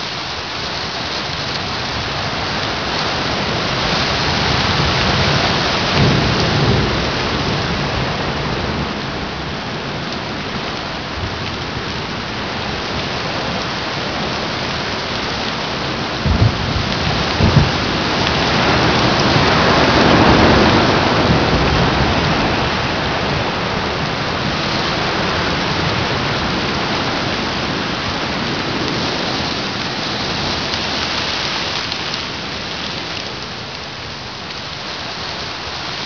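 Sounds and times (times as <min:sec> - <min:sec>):
rain outdoors: 0:00.0 - 0:36.0.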